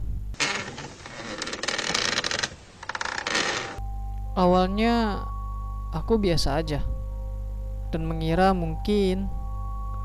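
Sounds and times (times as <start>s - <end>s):
folding chair rattling and creaking: 0.4s - 3.8s
steady air conditioner hum: 3.5s - 10.0s
speech: 4.4s - 5.3s, 5.9s - 6.9s, 7.9s - 9.4s.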